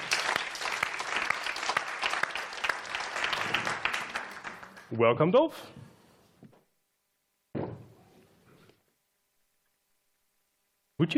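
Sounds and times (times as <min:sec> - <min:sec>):
audience round of applause: 0:00.0 - 0:04.9
speech: 0:04.9 - 0:05.8.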